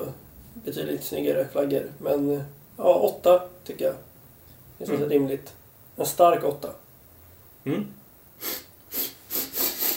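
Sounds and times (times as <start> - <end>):
speech: 0.7 - 4.1, 4.8 - 6.8, 7.6 - 8.5
person sniffling: 8.4 - 9.9.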